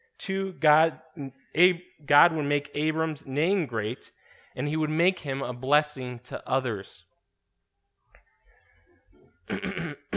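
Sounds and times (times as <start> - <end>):
speech: 0.2 - 7.1, 9.5 - 10.0
loud cough: 9.5 - 10.1.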